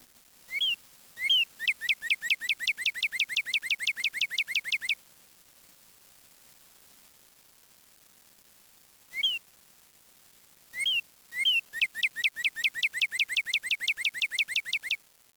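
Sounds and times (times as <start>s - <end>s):
bird song with high sharp chirps: 0.5s - 5.0s, 9.2s - 9.4s, 10.8s - 15.0s.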